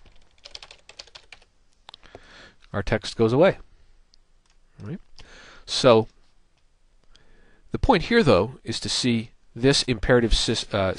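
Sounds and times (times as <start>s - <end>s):
typing on a computer keyboard into a text box: 0.0s - 1.5s
speech: 2.2s - 3.7s, 4.8s - 6.2s, 7.7s - 10.9s.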